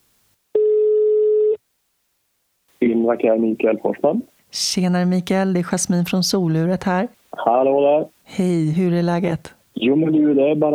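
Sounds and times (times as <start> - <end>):
telephone ringback tone: 0.6 - 1.6
speech: 2.8 - 10.7.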